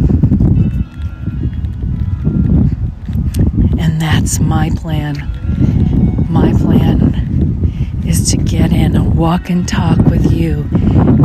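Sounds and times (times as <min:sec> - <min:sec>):
wind gusting across the microphone outdoors on a breezy sunny day: 0:00.0 - 0:11.2
speech: 0:04.2 - 0:05.4, 0:08.1 - 0:11.2.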